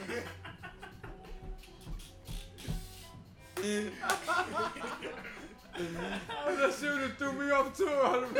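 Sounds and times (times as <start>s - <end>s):
people chuckling: 0.0s - 2.1s, 3.6s - 7.0s
slaps to a woman's face: 3.6s - 4.3s
speech: 3.6s - 8.3s.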